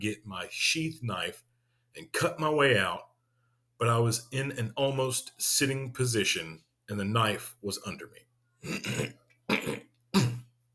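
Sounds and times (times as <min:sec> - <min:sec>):
speech: 0:00.0 - 0:03.1, 0:03.8 - 0:10.3
person clearing throat: 0:08.6 - 0:10.5
person coughing with short rasping bursts: 0:08.6 - 0:10.5.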